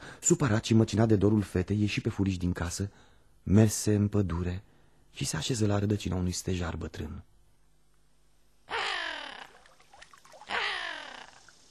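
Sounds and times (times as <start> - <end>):
speech: 0.2 - 7.3
raven cawing: 8.7 - 9.6, 10.5 - 11.5.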